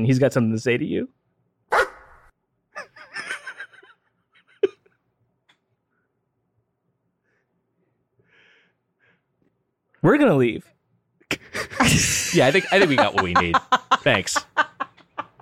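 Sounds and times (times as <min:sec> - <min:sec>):
speech: 0:00.0 - 0:01.8, 0:10.0 - 0:10.8, 0:11.8 - 0:14.7
dog barking: 0:01.7 - 0:02.1
laughter: 0:11.3 - 0:15.3.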